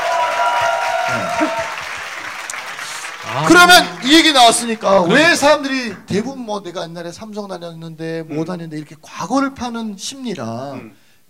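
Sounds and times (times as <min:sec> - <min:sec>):
applause from a small group: 0:00.0 - 0:05.5
speech: 0:03.6 - 0:11.0.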